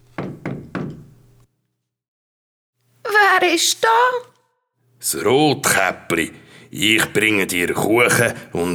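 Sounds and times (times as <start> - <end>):
knocking on the wooden door of a house: 0.0 - 1.4
speech: 3.5 - 4.3, 5.0 - 8.7.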